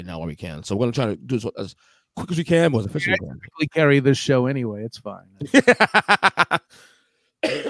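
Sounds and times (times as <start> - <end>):
speech: 0.0 - 7.6
short breath: 1.8 - 2.2, 6.7 - 7.4
laughter: 5.4 - 6.7
person coughing: 7.4 - 7.6.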